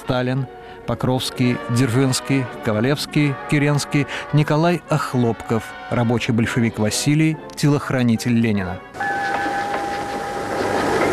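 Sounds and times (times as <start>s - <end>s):
speech: 0.1s - 9.1s
sustained high whining tones of an arriving train: 9.0s - 11.1s
train pulling in: 9.0s - 11.1s.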